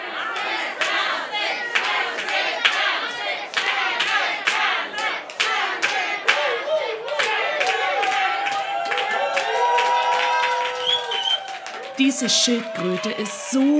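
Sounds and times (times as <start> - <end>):
crowd of spectators cheering on runners in a race: 0.0 - 13.7
spectators clapping: 0.0 - 13.7
spectators whistling: 10.6 - 11.8
speech: 12.0 - 13.7.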